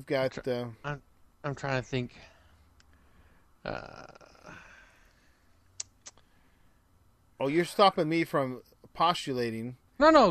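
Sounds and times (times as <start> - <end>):
speech: 0.0 - 2.3, 3.6 - 4.6, 7.4 - 10.2
loud fart: 3.6 - 4.4.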